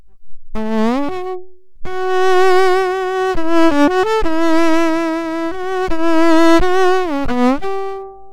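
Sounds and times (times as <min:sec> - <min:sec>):
bowed string force on bridge: 0:00.0 - 0:08.3.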